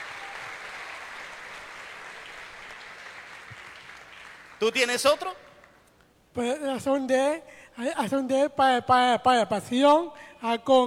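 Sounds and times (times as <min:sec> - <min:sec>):
crowd applauding: 0:00.0 - 0:04.9
speech: 0:04.6 - 0:05.4, 0:06.4 - 0:10.8.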